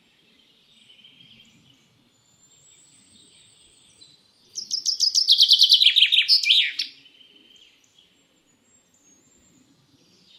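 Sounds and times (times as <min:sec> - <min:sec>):
common chaffinch singing: 0:04.5 - 0:07.2.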